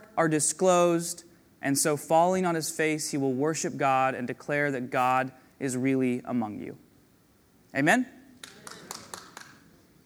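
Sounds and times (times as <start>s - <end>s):
speech: 0.2s - 6.8s, 7.7s - 8.2s
audience clapping: 8.4s - 9.8s.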